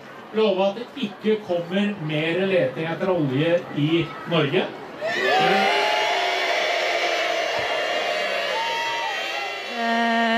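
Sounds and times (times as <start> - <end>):
speech: 0.3 - 5.7
people shouting in a crowd: 5.0 - 9.9
large outdoor crowd booing at a demonstration: 5.0 - 10.3.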